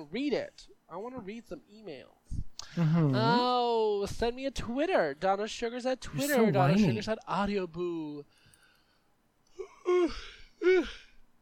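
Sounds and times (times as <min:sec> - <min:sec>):
speech: 0:00.0 - 0:08.4, 0:09.6 - 0:11.0
person yawning: 0:09.6 - 0:11.2.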